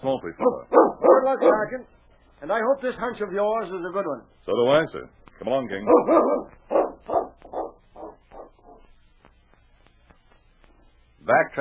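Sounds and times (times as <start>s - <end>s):
speech: 0.0s - 7.5s, 11.2s - 11.5s
dog barking: 0.4s - 1.8s, 5.8s - 8.9s.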